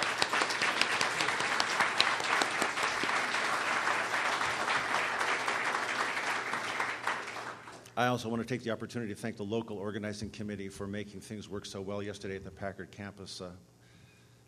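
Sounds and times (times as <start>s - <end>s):
audience applauding: 0.0s - 7.8s
speech: 8.0s - 13.8s.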